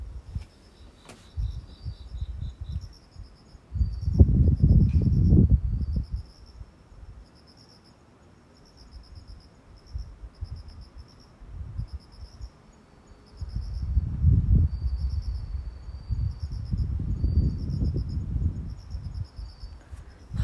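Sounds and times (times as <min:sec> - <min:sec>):
crickets chirping at night in a high trill: 0:00.0 - 0:20.4
gusts of wind rumbling and buffeting: 0:01.3 - 0:07.2, 0:11.4 - 0:12.4, 0:13.3 - 0:20.4.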